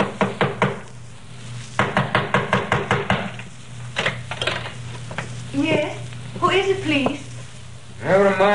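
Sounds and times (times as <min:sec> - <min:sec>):
sharp knocks on a wooden door: 0:00.0 - 0:00.8, 0:01.8 - 0:03.3
low steady hum: 0:00.0 - 0:08.5
speech: 0:06.6 - 0:07.2.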